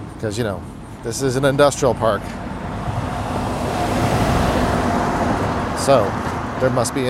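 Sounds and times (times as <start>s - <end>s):
speech: 0.2s - 2.5s, 5.8s - 7.0s
truck rumbling past outdoors: 1.5s - 7.0s.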